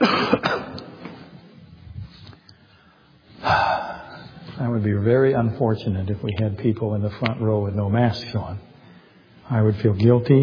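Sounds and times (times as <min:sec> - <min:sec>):
person coughing: 0:00.0 - 0:00.9
faint breathing: 0:02.2 - 0:04.6, 0:08.7 - 0:09.5
speech: 0:04.6 - 0:08.7, 0:09.5 - 0:10.4.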